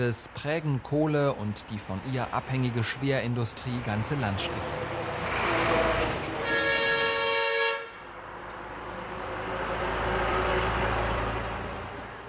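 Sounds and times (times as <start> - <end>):
speech: 0.0 - 5.0
heavy loaded coal trucks rumbling past: 0.8 - 12.2
long truck horn blast: 5.5 - 8.0.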